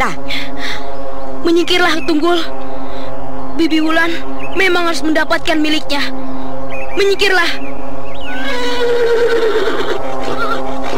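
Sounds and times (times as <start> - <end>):
speech: 0.0 - 0.4, 1.4 - 2.6, 3.6 - 6.3, 7.0 - 7.7
white horse whinnying: 8.3 - 10.9.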